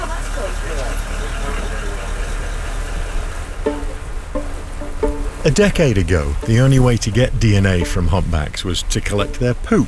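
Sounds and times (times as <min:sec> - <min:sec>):
boat engine throttling up leaving a marina: 0:00.0 - 0:09.8
brief tonal bursts: 0:03.6 - 0:09.8
speech: 0:05.6 - 0:09.8.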